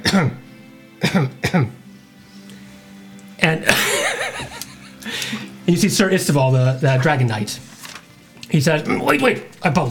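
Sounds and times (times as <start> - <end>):
person coughing harshly: 0.0 - 0.4, 1.0 - 1.8
speech: 0.1 - 0.4, 1.0 - 1.8, 3.4 - 7.7, 8.5 - 9.9
laughter: 3.6 - 5.5.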